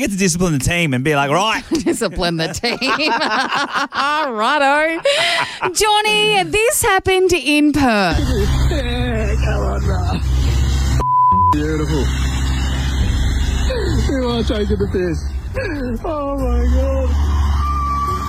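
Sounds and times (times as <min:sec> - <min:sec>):
speech: 0:00.0 - 0:10.0, 0:11.5 - 0:12.3, 0:14.1 - 0:17.3
laughter: 0:01.5 - 0:06.4
car engine rumbling low as the car slowly pulls away: 0:08.2 - 0:11.0, 0:11.6 - 0:18.2
short electronic beep: 0:11.0 - 0:11.8.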